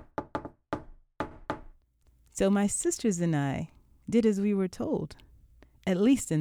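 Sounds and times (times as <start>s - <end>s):
deliberate rhythmic knock on a wooden door: 0.0s - 1.8s
speech: 2.4s - 5.2s, 5.8s - 6.4s.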